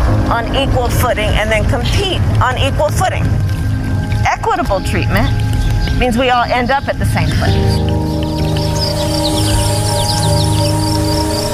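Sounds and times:
birds chirping: 0.0s - 11.5s
flowing water rushing: 0.0s - 11.5s
speech: 0.3s - 3.5s, 4.4s - 8.1s.

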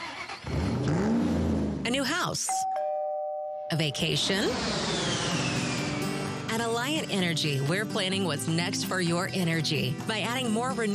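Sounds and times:
car engine starting and revving: 0.0s - 2.0s, 4.1s - 6.9s
speech: 2.0s - 2.7s, 3.7s - 5.1s, 6.6s - 10.9s.

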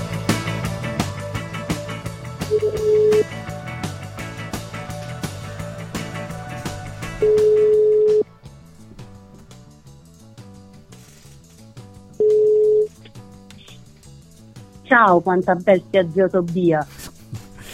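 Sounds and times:
music: 0.0s - 17.7s
ringback tone of an outgoing telephone call: 2.5s - 3.3s, 7.2s - 8.3s, 12.2s - 13.0s
speech: 15.0s - 17.0s.

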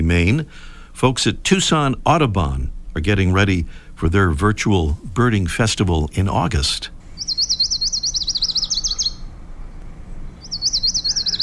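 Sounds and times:
speech: 0.0s - 7.0s
Lucy's Warbler song, high wavering trill: 5.9s - 11.4s.

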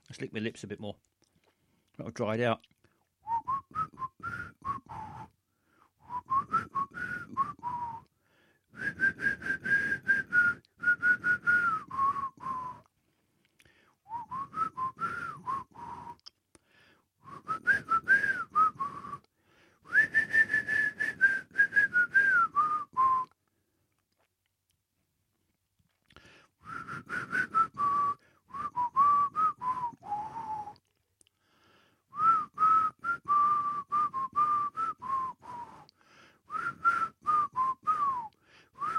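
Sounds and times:
speech: 0.1s - 1.2s, 2.0s - 2.7s
person whistling a TV theme tune: 3.2s - 5.4s, 6.0s - 8.1s, 8.7s - 12.9s, 14.1s - 16.3s, 17.2s - 19.3s, 19.9s - 23.4s, 26.6s - 30.9s, 32.1s - 38.9s.

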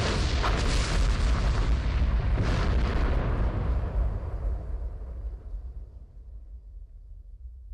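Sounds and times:
powder-magazine explosion boom: 0.0s - 6.2s.

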